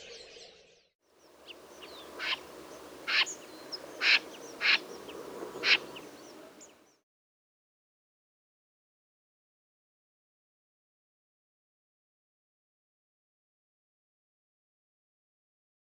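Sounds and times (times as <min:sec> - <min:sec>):
common snipe calling: 0:01.4 - 0:06.8.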